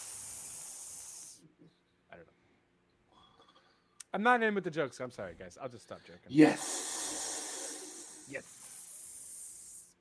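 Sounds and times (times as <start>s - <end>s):
cobra hissing: 0.0s - 1.4s, 6.5s - 10.0s
speech: 4.1s - 6.8s.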